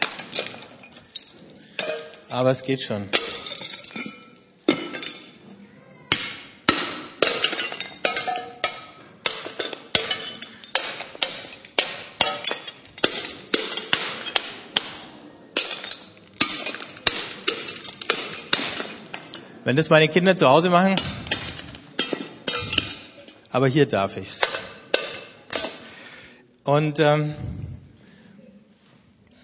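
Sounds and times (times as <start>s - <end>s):
hammer smashing ceramic flower pots laid on newspapers: 0.0s - 5.4s, 6.1s - 19.6s, 20.7s - 23.5s, 24.2s - 26.0s
speech: 2.3s - 3.4s, 19.7s - 21.2s, 23.6s - 24.4s, 26.6s - 27.6s.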